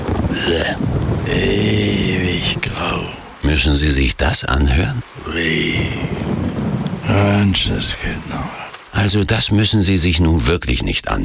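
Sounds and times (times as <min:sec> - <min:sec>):
rain: 0:00.0 - 0:11.2
speech: 0:00.4 - 0:06.2, 0:07.1 - 0:11.2.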